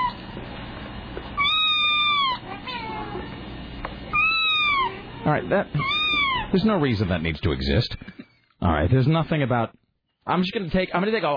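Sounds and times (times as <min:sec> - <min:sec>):
kitten meowing in a video: 0:01.4 - 0:03.3, 0:04.1 - 0:06.6
speech: 0:05.3 - 0:05.9, 0:06.5 - 0:11.3.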